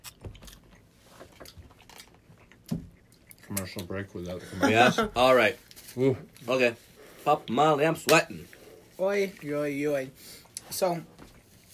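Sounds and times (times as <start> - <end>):
people chewing food with quiet crunching and clicking: 0.0 - 11.7
speech: 3.6 - 11.1.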